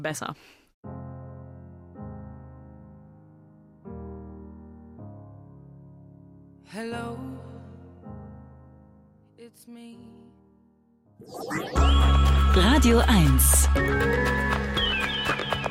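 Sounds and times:
speech: 0.0s - 1.0s, 6.7s - 7.4s, 9.5s - 10.4s, 11.2s - 14.6s
sustained piano chords in a slow pop ballad: 0.9s - 15.6s
woman singing a slow pop ballad: 6.7s - 7.8s, 9.4s - 10.4s.

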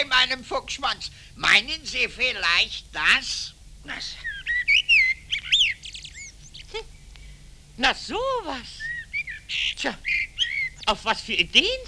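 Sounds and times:
speech: 0.0s - 4.3s, 7.8s - 8.9s, 9.5s - 10.3s, 10.9s - 11.8s
male blackbird singing fluting whistles and twittering notes: 3.9s - 7.1s, 7.8s - 11.8s.

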